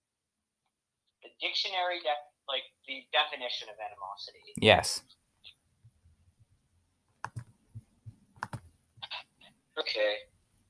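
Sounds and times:
speech: 1.2s - 5.2s, 9.8s - 10.3s
computer keyboard typing: 7.2s - 8.7s.

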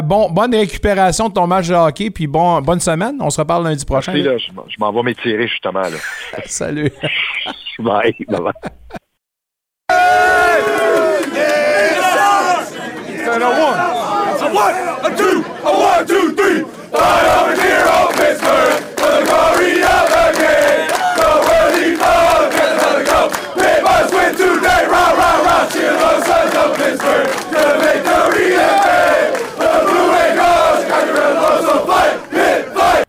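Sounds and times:
speech: 0.1s - 9.0s, 13.3s - 21.0s
laughter: 5.8s - 9.1s
football team players shouting a rallying chant in unison after a victory: 9.9s - 33.0s.

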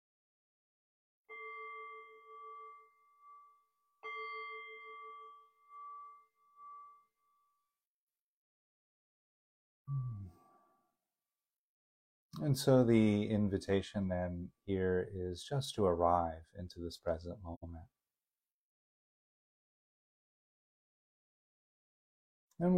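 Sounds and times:
meditation bell ringing: 1.3s - 7.6s
speech: 12.4s - 18.0s, 22.6s - 22.7s.

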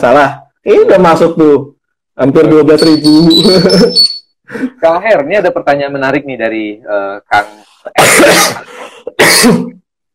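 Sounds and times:
speech: 0.0s - 9.8s
harsh throaty coughs: 7.9s - 9.8s.

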